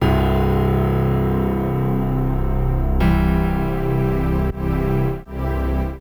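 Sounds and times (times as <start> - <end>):
downbeat string music: 0.0 - 6.0.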